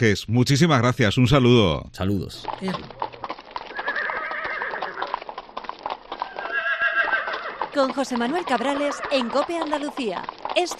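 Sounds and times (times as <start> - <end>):
speech: 0.0 - 3.0, 7.8 - 10.7
horse hooves clip-clopping and trotting: 1.4 - 10.7
horse neighing: 2.4 - 10.7.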